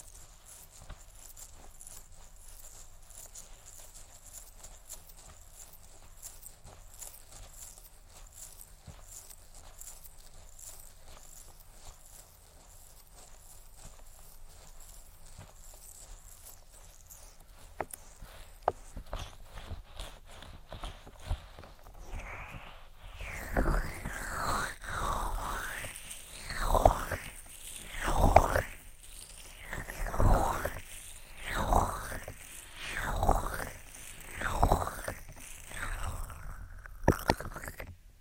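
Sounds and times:
crackly tapping and rustling against the mic: 0.0 - 38.0
rhythmic rubbing or cupping sweeps against the mic: 14.3 - 37.8.

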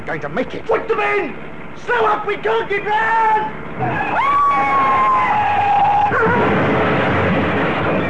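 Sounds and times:
speech: 0.0 - 5.3
police siren wailing: 3.8 - 6.6
car crash noisy roar: 3.8 - 8.0.

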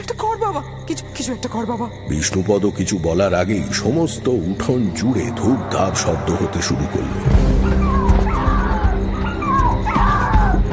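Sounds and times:
speech: 0.0 - 7.9
puppies yelping and howling in a courtyard: 7.4 - 10.7.

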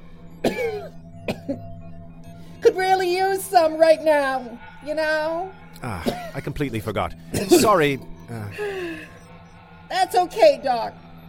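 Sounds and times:
faint steady hum: 0.0 - 11.2
person coughing: 0.4 - 1.6, 5.8 - 6.5, 7.3 - 7.9
speech: 1.3 - 1.8, 2.6 - 9.2, 9.9 - 11.0.

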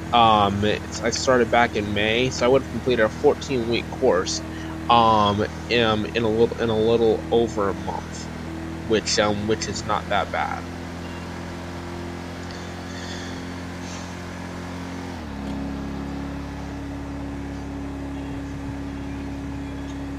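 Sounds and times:
engine drone of state patrol car driven in a video game: 0.0 - 20.1
speech: 0.1 - 8.3, 8.9 - 10.8.

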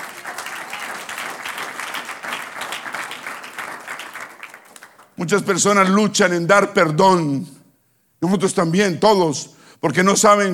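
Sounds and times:
congregation applauding: 0.0 - 5.2
speech: 5.2 - 7.6, 8.2 - 10.5.

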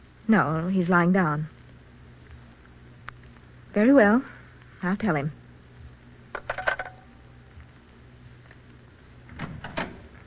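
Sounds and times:
speech: 0.3 - 1.6, 3.8 - 5.4
door swinging shut: 9.3 - 10.1.

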